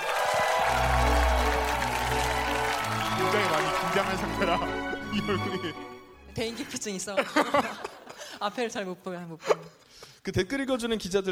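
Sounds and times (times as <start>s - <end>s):
audience applause welcoming a guest: 0.0s - 5.8s
speech: 4.0s - 11.2s
laughter: 7.0s - 8.4s.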